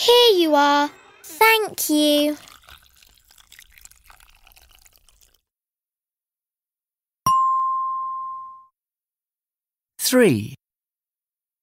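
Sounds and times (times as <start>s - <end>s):
speech: 0.0s - 2.5s, 10.0s - 10.6s
water pouring into a pot: 1.5s - 5.5s
bright ding: 7.3s - 8.7s.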